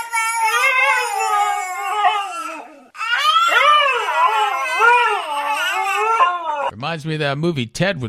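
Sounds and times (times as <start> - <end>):
baby wailing in a rising and falling cry: 0.0 - 6.7
husky howling: 0.5 - 6.7
speech: 6.9 - 8.0.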